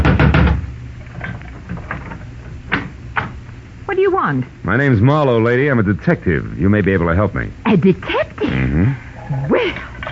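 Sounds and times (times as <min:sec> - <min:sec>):
knocking on a wooden front door: 0:00.0 - 0:00.7
speech: 0:04.2 - 0:09.9.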